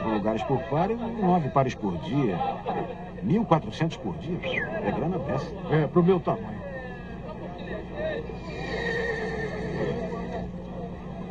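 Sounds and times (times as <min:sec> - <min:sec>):
overlapping voices and chatter: 0:00.0 - 0:11.2
speech: 0:00.2 - 0:06.7
laughter: 0:02.0 - 0:03.2
horse neighing: 0:08.4 - 0:10.2.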